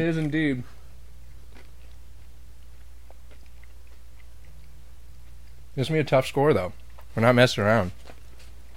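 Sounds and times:
speech: 0.0 - 0.8, 5.8 - 8.1
low steady hum: 0.0 - 8.7
biting and chewing crunchy pizza crust: 1.2 - 5.8, 6.6 - 7.2, 7.8 - 8.7.

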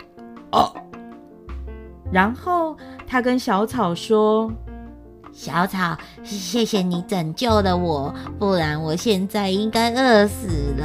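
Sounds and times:
speech: 0.5 - 0.8, 2.1 - 4.6, 5.4 - 10.8
burp after eating lots of bananas, dates, tangerines and strawberries: 0.5 - 1.0.

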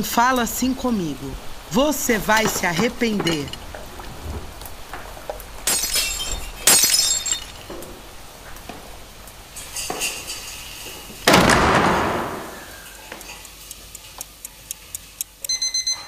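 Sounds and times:
speech: 0.0 - 3.6
window glass cracking and shattering: 0.6 - 12.8
faint tinkling and crackling of glass: 1.7 - 4.0, 5.6 - 8.2, 9.5 - 11.2.

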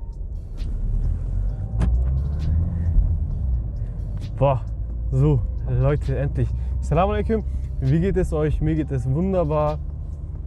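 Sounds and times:
borrowed family car engine rumble while being driven: 0.0 - 10.4
road noise: 0.0 - 10.4
speech: 4.4 - 9.9.

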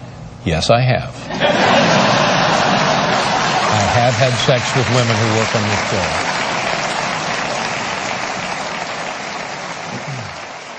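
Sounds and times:
speech: 0.4 - 2.0, 4.0 - 6.3
laughter: 1.3 - 6.2
studio audience applause: 1.4 - 10.7.

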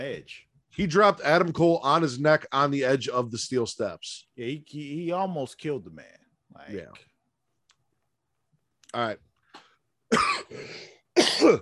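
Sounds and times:
speech: 0.0 - 7.1, 8.9 - 9.2, 10.1 - 11.6
person coughing: 10.1 - 11.6.

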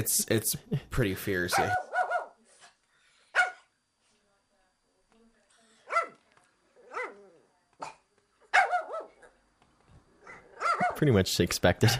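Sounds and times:
speech: 0.0 - 1.9, 11.0 - 11.9
small toy-breed dog barking: 1.5 - 2.4, 3.3 - 3.7, 5.8 - 6.2, 6.8 - 9.4, 10.2 - 11.0.

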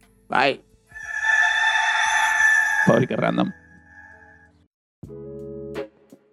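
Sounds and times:
speech: 0.3 - 0.7, 2.8 - 3.6
autotuned rooster crowing: 1.0 - 4.4.

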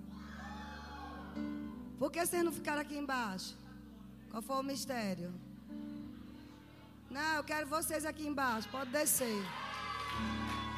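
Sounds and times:
group of teenagers upstairs shouting and whooping during a prayer gathering: 0.0 - 1.7, 8.6 - 10.7
speech: 2.0 - 3.6, 4.3 - 5.5, 7.1 - 10.4.

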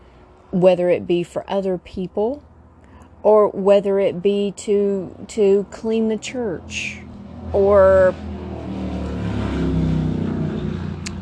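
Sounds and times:
speech: 0.5 - 2.5, 3.2 - 8.3
motorcycle engine droning as it passes outside an open window: 4.7 - 11.2.

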